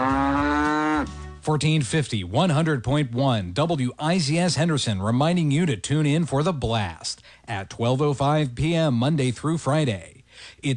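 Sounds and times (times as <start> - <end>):
cow mooing: 0.0 - 1.4
speech: 1.5 - 10.7.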